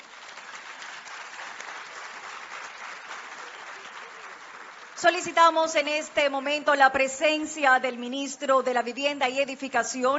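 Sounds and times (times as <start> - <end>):
crowd applauding: 0.0 - 5.8
speech: 5.0 - 10.1.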